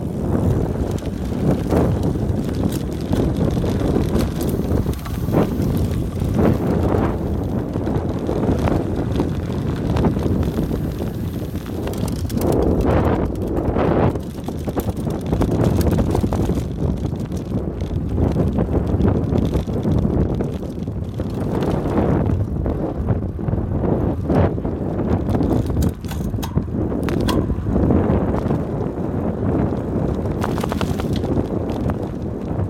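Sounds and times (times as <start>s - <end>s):
wind rush from a bicycle riding white gravel dust roads: 0.0s - 14.2s, 22.2s - 31.4s
bicycle rumbling on the white gravel dust roads: 0.0s - 32.6s.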